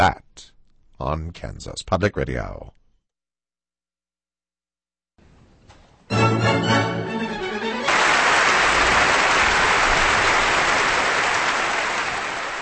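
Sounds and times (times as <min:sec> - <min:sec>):
speech: 0:00.0 - 0:00.2, 0:01.0 - 0:02.8
sustained orchestral chord: 0:06.1 - 0:08.2
large concert audience applause: 0:07.8 - 0:12.5.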